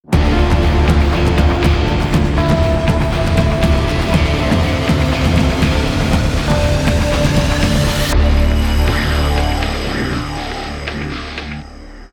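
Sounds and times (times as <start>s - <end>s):
rock music: 0.0s - 11.7s.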